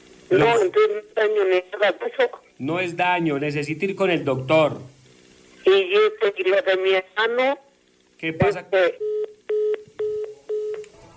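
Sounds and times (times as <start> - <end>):
speech: 0.3 - 5.0, 5.6 - 9.2
telephone tone beeps after a dropped call: 9.0 - 10.9.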